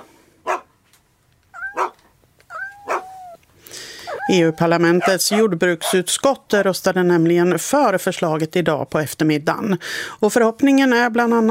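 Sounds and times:
dog barking: 0.4 - 0.7, 1.6 - 2.0, 2.6 - 3.4, 4.1 - 6.1
dog whining: 1.5 - 6.0
speech: 4.3 - 11.5.

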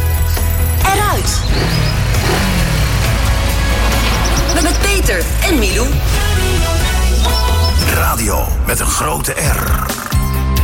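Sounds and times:
car engine revving hard with a deep low rumble: 0.4 - 8.6
speech: 5.1 - 6.2, 8.2 - 10.0.

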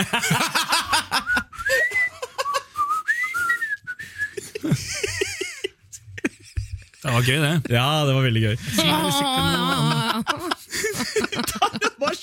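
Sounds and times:
speech: 0.0 - 0.8, 7.1 - 10.4
laughter: 0.0 - 2.8, 4.3 - 7.7, 8.8 - 12.2
person whistling a short wavering melody: 1.2 - 4.4.

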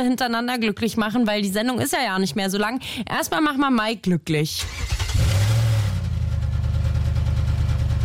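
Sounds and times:
speech: 0.0 - 5.3
powerful V8 engine revving with a deep throaty roar: 4.7 - 8.0.

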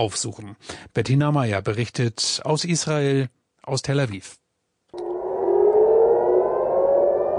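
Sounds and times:
speech: 0.0 - 5.0
air raid warning siren wailing: 5.0 - 7.3.

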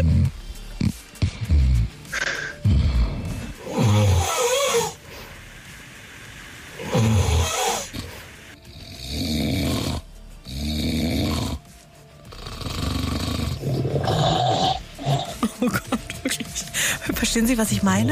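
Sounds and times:
loud human snoring: 0.0 - 5.0, 6.8 - 15.6
laughter: 15.3 - 16.9
speech: 17.4 - 18.0.

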